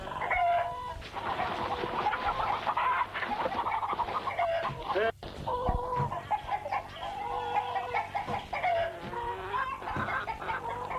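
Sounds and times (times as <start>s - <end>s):
several hens clucking and chattering: 0.0s - 10.9s.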